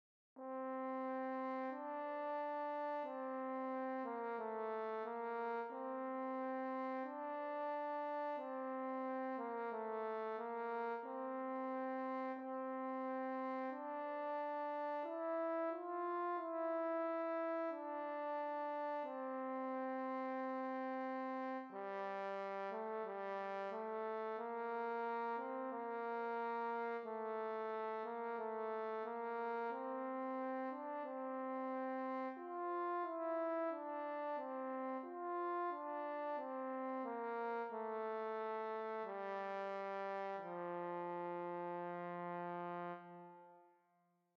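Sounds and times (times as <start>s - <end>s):
French horn solo: 0.4s - 44.3s.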